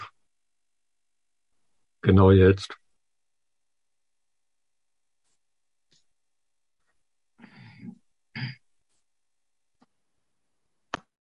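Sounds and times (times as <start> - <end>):
speech: 2.0 - 2.8
person clearing throat: 7.6 - 8.7.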